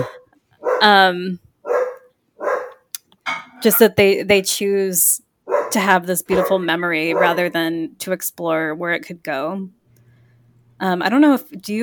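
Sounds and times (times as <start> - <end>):
dog barking: 0.0 - 1.0, 1.6 - 2.8, 5.5 - 7.6
speech: 0.8 - 1.4, 3.6 - 9.8, 10.8 - 11.8.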